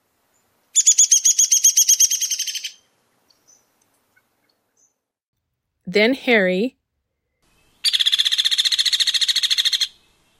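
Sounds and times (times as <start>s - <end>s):
hairy woodpecker rattling call: 0.8s - 3.6s, 7.8s - 10.0s
speech: 5.9s - 6.8s.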